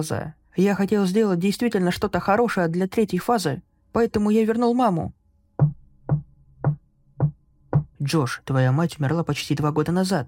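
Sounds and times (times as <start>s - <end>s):
speech: 0.0s - 5.2s, 8.0s - 10.2s
slow knocking on a door: 5.6s - 8.0s.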